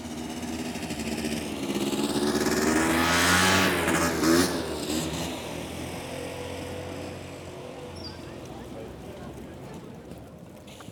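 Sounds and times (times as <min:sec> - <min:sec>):
small scooter engine buzzing on a tiny island: 0:00.0 - 0:08.4.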